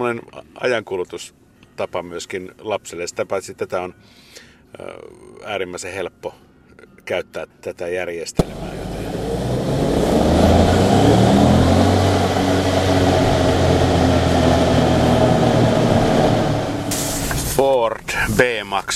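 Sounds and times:
speech: 0:00.0 - 0:08.9, 0:17.9 - 0:18.9
1.0-litre 120-horsepower EcoBoost turbo petrol car engine running: 0:08.4 - 0:17.6.

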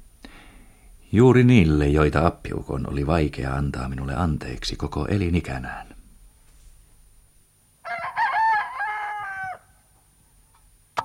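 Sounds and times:
speech: 0:01.1 - 0:06.0
rooster crowing: 0:07.8 - 0:10.0.

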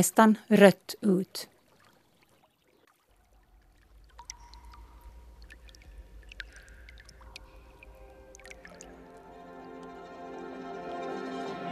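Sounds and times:
speech: 0:00.0 - 0:01.5
water trickling and dripping from a spring: 0:00.0 - 0:10.0.

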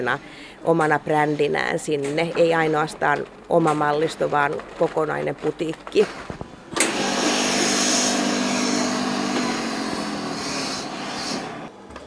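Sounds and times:
speech: 0:00.0 - 0:06.3
sewing machine motor whirring in a workshop: 0:05.9 - 0:11.7.

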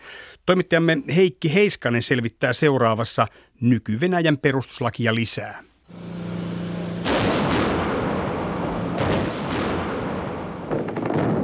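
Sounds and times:
speech: 0:00.5 - 0:06.2
tanks firing cannon at the parliament building in Moscow: 0:05.9 - 0:11.4.

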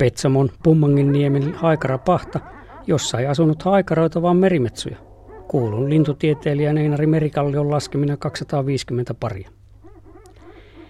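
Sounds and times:
speech: 0:00.0 - 0:09.6
common murre calls: 0:00.0 - 0:10.8.

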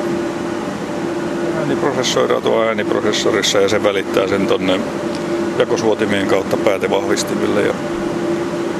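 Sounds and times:
server cooling fan humming in a cinema projection room: 0:00.0 - 0:08.7
speech: 0:01.8 - 0:08.1.

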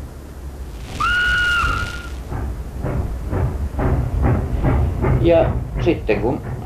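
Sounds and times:
low rumbling of steam train: 0:00.0 - 0:05.8
steam locomotive chuffing as it departs: 0:00.6 - 0:06.6
steam train whistle: 0:01.0 - 0:02.3
speech: 0:05.3 - 0:06.5.

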